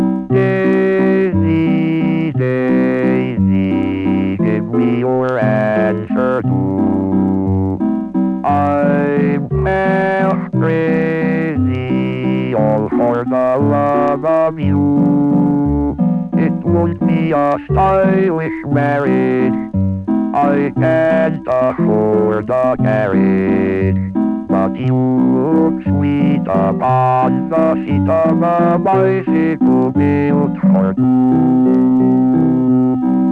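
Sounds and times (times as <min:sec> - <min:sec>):
singing machine: 0:00.1 - 0:33.2.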